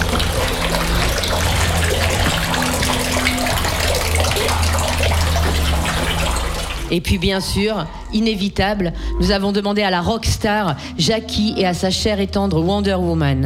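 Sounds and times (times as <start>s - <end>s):
water running at a village washhouse: 0.0s - 7.0s
low hum: 0.0s - 12.2s
speech: 6.9s - 13.4s.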